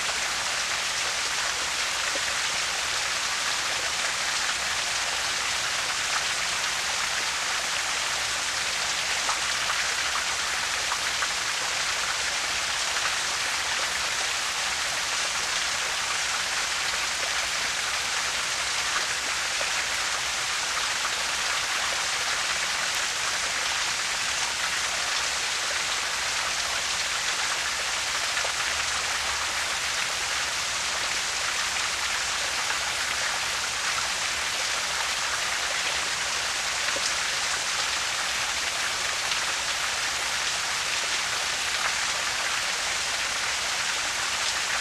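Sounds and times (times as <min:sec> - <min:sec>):
distant small waterfall heard from the bottom: 0:00.0 - 0:44.7.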